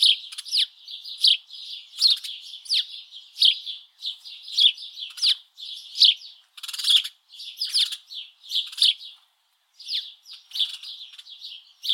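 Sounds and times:
house sparrow Passer domesticus chirping: 0.0 - 11.9.

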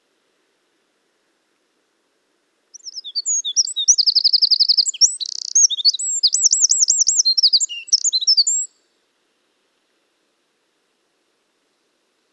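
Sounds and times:
Eurasian wren Troglodytes troglodytes song: 2.7 - 8.7.

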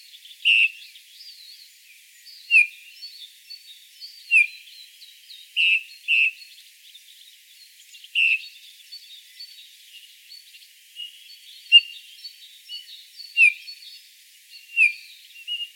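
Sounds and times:
continuous thin chirping of other birds: 0.0 - 15.7
Eurasian bullfinch Pyrrhula pyrrhula giving mellow downslurred whistled calls: 0.5 - 0.7, 5.6 - 6.3, 8.2 - 8.4, 13.4 - 13.6, 14.7 - 15.7.

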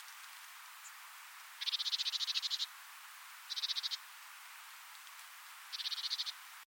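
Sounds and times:
Great tit Parus major churring call: 1.6 - 2.7, 3.5 - 4.0, 5.7 - 6.4.

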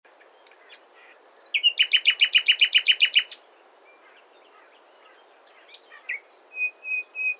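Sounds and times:
common nightingale Luscinia megarhynchos song: 0.1 - 7.3.

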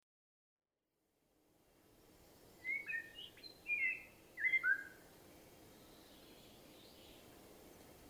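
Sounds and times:
Common blackbird song: 2.2 - 8.0.

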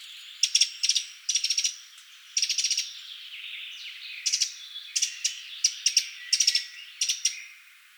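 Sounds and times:
Eurasian wren Troglodytes troglodytes giving short dry ticking rattles: 0.0 - 3.0, 4.2 - 7.4.

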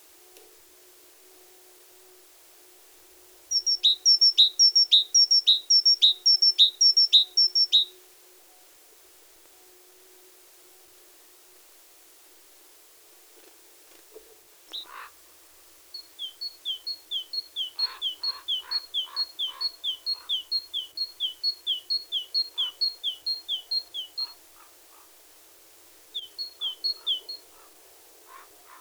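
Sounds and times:
great tit Parus major singing two-note phrases: 3.5 - 7.9, 14.7 - 15.1, 16.0 - 25.1, 26.1 - 28.7.

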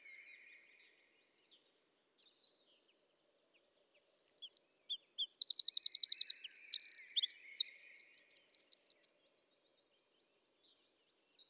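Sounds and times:
Eurasian wren Troglodytes troglodytes song with rattle, chips and rolling whistles: 4.7 - 9.1.

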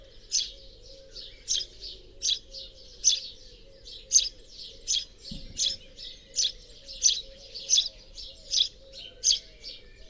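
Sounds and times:
house sparrow Passer domesticus chirping: 0.3 - 0.6, 1.3 - 3.4, 4.0 - 9.4.

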